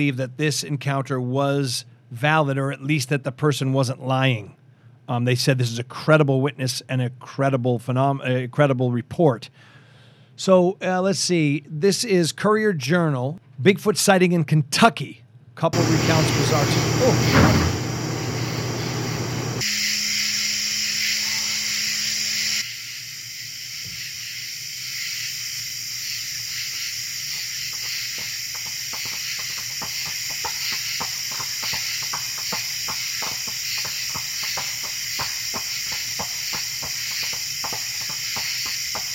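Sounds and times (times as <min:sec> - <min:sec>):
speech: 0:00.0 - 0:09.7, 0:10.4 - 0:17.8
steady hissing background: 0:15.8 - 0:39.1
sharp knocking clacks: 0:27.7 - 0:39.1.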